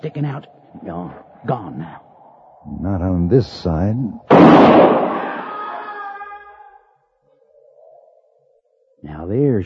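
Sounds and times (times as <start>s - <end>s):
speech: 0.0s - 5.1s, 9.0s - 9.6s
single loud gunshot in a firefight with ringing tail: 4.3s - 5.4s.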